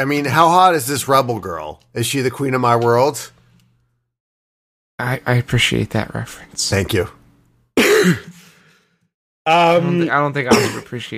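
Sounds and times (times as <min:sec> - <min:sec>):
speech: 0:00.0 - 0:03.4, 0:05.0 - 0:07.2, 0:07.8 - 0:08.4, 0:09.5 - 0:11.1
harsh throaty cough: 0:07.8 - 0:08.6, 0:10.5 - 0:11.0.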